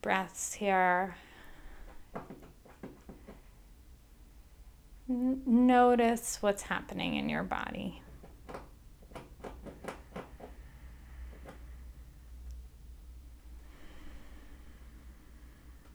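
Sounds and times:
speech: 0:00.0 - 0:01.3, 0:02.1 - 0:02.6, 0:05.1 - 0:08.0
soft low rustle and hiss: 0:00.0 - 0:15.9
squirrels scratching and tapping trying to get into a house: 0:01.4 - 0:03.6, 0:07.6 - 0:11.8.

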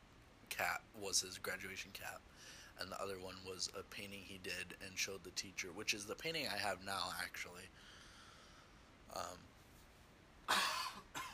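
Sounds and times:
speech: 0:00.6 - 0:08.0, 0:09.1 - 0:09.5
person coughing: 0:10.5 - 0:11.3.

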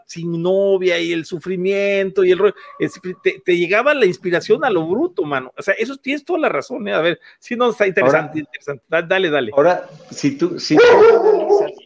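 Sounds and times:
speech: 0:00.1 - 0:11.8
dog giving a loud drawn-out bark: 0:02.5 - 0:03.2, 0:10.7 - 0:11.8
dog whining softly: 0:10.8 - 0:11.8.

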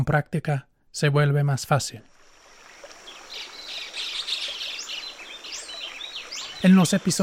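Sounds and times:
speech: 0:00.0 - 0:02.1, 0:06.6 - 0:07.2
soft wash like running water: 0:01.6 - 0:07.2
several birds singing and chirping in chorus: 0:02.6 - 0:07.2.

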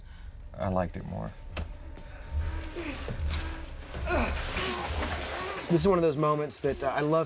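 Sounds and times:
low rumbling background: 0:00.0 - 0:06.1
speech: 0:00.6 - 0:01.4, 0:05.7 - 0:07.2
heavy labored breathing during a film fight scene: 0:02.0 - 0:04.9.

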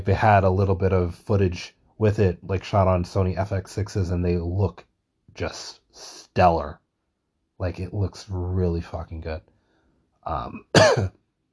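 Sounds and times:
speech: 0:00.0 - 0:06.8, 0:07.6 - 0:09.5, 0:10.2 - 0:11.2
person coughing: 0:10.3 - 0:11.1.

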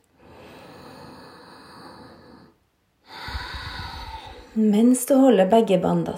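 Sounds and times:
hissing ujjayi breaths drawn through a constricted throat: 0:00.0 - 0:04.6
speech: 0:04.6 - 0:06.1.

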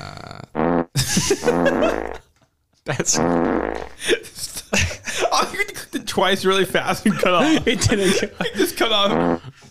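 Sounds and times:
fart sound effect: 0:00.0 - 0:02.3, 0:03.0 - 0:04.0, 0:08.9 - 0:09.6
laughter: 0:01.0 - 0:03.2, 0:04.0 - 0:05.7, 0:06.8 - 0:09.6
speech: 0:01.2 - 0:02.2, 0:02.9 - 0:04.3, 0:06.2 - 0:09.5.

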